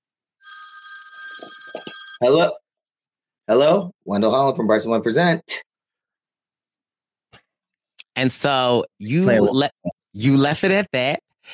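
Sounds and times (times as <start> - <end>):
phone ringing with an electronic trill: 0.4 - 2.3
speech: 2.2 - 2.6, 3.5 - 5.5, 8.2 - 11.5.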